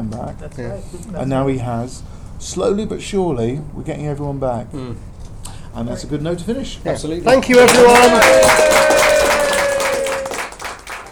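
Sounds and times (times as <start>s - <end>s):
speech: 0.2s - 5.1s, 5.8s - 8.8s
crowd applauding with dense crackly clapping: 7.3s - 11.1s.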